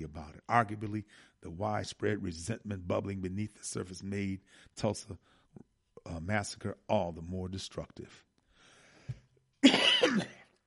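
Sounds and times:
speech: 0:00.1 - 0:08.3, 0:09.1 - 0:10.4
person getting over a cold coughing: 0:09.6 - 0:10.6.

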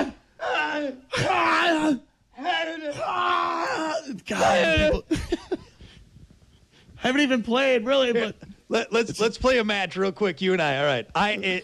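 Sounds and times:
exaggerated screams and grunting yells imitating a tennis serve: 0:00.0 - 0:05.1
speech: 0:04.3 - 0:05.2, 0:07.0 - 0:11.6.

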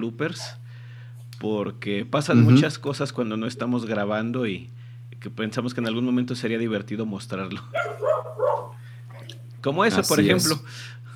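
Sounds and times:
speech: 0:00.0 - 0:00.6, 0:01.4 - 0:11.0
dog giving yelping barks: 0:07.8 - 0:09.3.

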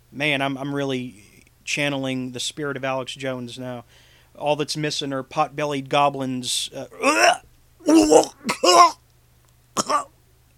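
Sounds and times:
speech: 0:00.2 - 0:07.3, 0:08.1 - 0:09.0
person coughing: 0:07.0 - 0:09.0, 0:09.8 - 0:10.1
throat clearing: 0:07.0 - 0:09.0, 0:09.8 - 0:10.1.

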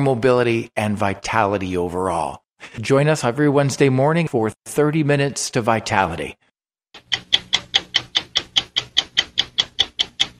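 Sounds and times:
speech: 0:00.0 - 0:06.4
clock ticking: 0:07.0 - 0:10.3.

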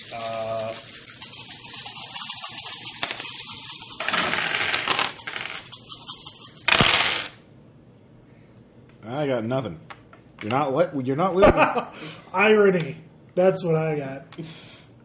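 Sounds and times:
handful of dice clattering across a hard tabletop: 0:00.0 - 0:07.4
speech: 0:09.2 - 0:14.7.

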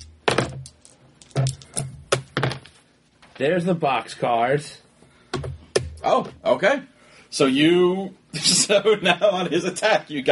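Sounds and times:
dice rolled on a table during a tabletop game: 0:00.0 - 0:02.8
speech: 0:03.4 - 0:04.8, 0:06.0 - 0:10.3.

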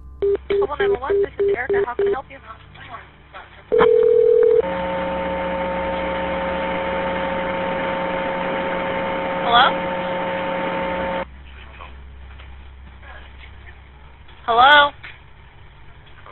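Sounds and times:
steady buzzing static on an emergency phone call: 0:00.0 - 0:02.2, 0:03.8 - 0:11.3
low electrical hum: 0:00.0 - 0:16.3
loud phone tone: 0:00.2 - 0:02.2, 0:03.7 - 0:11.2
phone dialing beeps of an emergency call to police: 0:00.2 - 0:02.2, 0:03.7 - 0:04.6
speech: 0:00.7 - 0:03.1, 0:03.7 - 0:05.1, 0:09.5 - 0:10.0.

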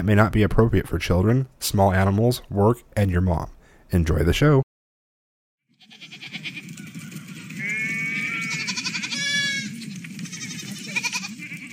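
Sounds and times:
speech: 0:00.0 - 0:04.7
several sheep bleating: 0:05.7 - 0:06.6, 0:07.6 - 0:11.7
low rumbling murmur of the flock: 0:06.3 - 0:11.7.

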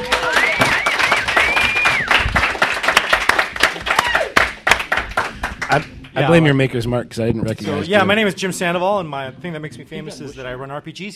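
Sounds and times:
audience applause at a gaming convention: 0:00.0 - 0:05.9
rising whistle: 0:00.2 - 0:02.2
speech: 0:05.7 - 0:11.1.

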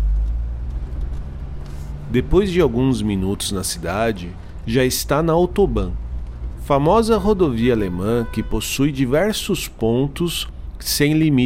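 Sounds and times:
car engine rumbling as the vehicle pulls away: 0:00.0 - 0:11.4
speech: 0:02.1 - 0:06.0, 0:06.7 - 0:11.4.

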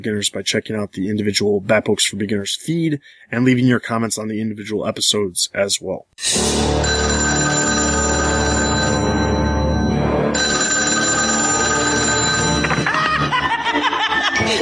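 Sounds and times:
speech: 0:00.0 - 0:08.2
telephone bell ringing: 0:06.8 - 0:13.3
chuckling: 0:12.6 - 0:14.6.

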